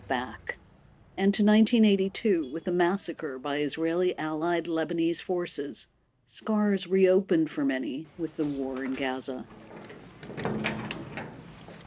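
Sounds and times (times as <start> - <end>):
speech: 0.1 - 0.6, 1.2 - 10.5
museum door being eased open: 8.4 - 11.8
key turning in a museum door lock: 9.5 - 11.8.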